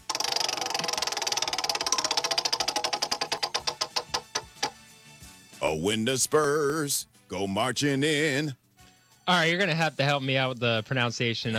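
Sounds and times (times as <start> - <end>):
prize wheel spinning with pointer ticking against pegs: 0.0 - 4.8
speech: 5.7 - 8.6, 9.3 - 11.5.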